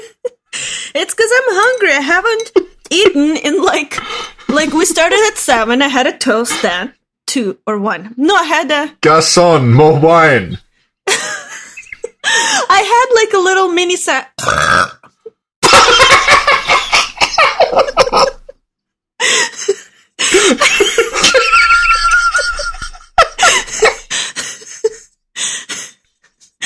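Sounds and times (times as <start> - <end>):
speech: 0.9 - 11.2, 12.7 - 14.9, 17.7 - 18.3
person burping loudly into a microphone: 14.4 - 15.1
laughter: 15.7 - 18.5, 20.3 - 25.0.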